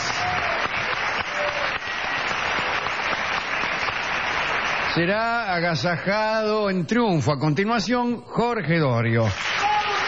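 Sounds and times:
large audience applauding in a theatre: 0:00.0 - 0:06.1, 0:09.2 - 0:10.0
speech: 0:05.0 - 0:09.6.

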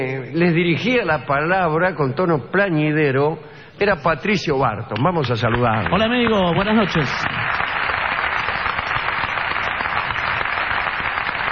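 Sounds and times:
speech: 0:00.0 - 0:07.6
one person clapping hands: 0:04.9 - 0:11.5.

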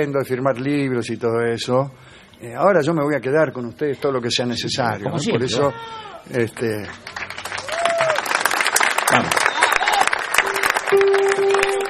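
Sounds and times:
speech: 0:00.0 - 0:07.2, 0:09.1 - 0:09.4
audience applause at a live book-signing appearance: 0:06.6 - 0:11.8.

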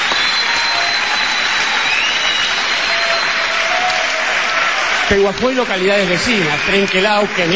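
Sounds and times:
studio audience applause: 0:00.0 - 0:07.5
speech: 0:05.1 - 0:07.5.

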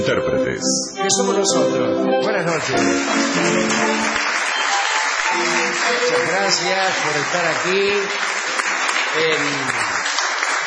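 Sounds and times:
speech: 0:00.0 - 0:04.3, 0:05.4 - 0:08.3, 0:09.2 - 0:09.9
audience applause at a live stage show: 0:02.5 - 0:10.6.

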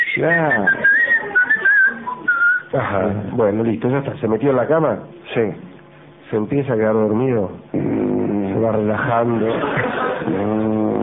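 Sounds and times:
person whistling a tune: 0:00.0 - 0:02.7
speech: 0:00.2 - 0:01.4, 0:02.7 - 0:05.7, 0:06.3 - 0:08.0, 0:08.6 - 0:11.0
laughter: 0:00.5 - 0:02.5, 0:08.8 - 0:11.0.

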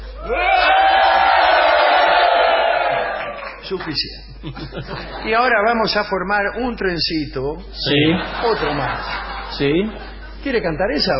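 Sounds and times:
group of people shouting and whooping in celebration: 0:00.1 - 0:03.6
speech: 0:03.7 - 0:11.1
laughter: 0:04.2 - 0:05.5, 0:07.9 - 0:10.4.

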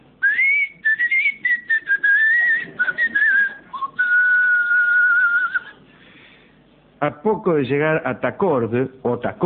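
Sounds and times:
person whistling a wavering melody: 0:00.2 - 0:05.8
speech: 0:07.0 - 0:09.4.

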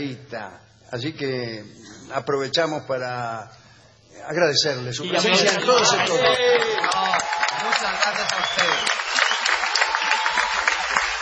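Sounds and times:
speech: 0:00.0 - 0:09.1
audience applause at a live show in a Madrid hall: 0:05.4 - 0:11.1.

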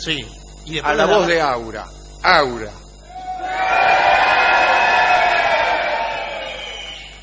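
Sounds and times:
speech: 0:00.0 - 0:02.8
large crowd shouting a single word in unison: 0:03.1 - 0:07.0.

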